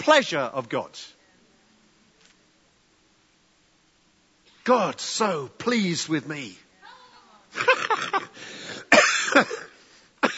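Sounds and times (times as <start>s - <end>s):
speech: 0.0s - 1.2s, 4.7s - 6.6s, 7.5s - 8.6s, 9.4s - 9.6s
person coughing: 7.6s - 10.3s.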